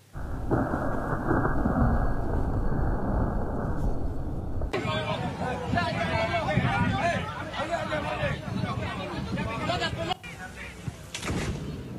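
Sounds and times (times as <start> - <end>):
thunder from a lightning strike over a stadium: 0.0 - 4.8
crowd hubbub from a large open venue: 4.7 - 11.9.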